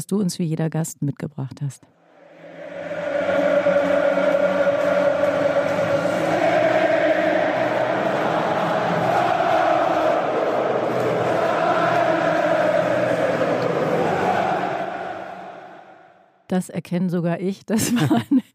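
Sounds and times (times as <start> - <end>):
speech: 0.0 - 2.0, 16.5 - 18.5
large crowd singing celebratory chants: 2.0 - 16.3
laughter: 17.7 - 18.5.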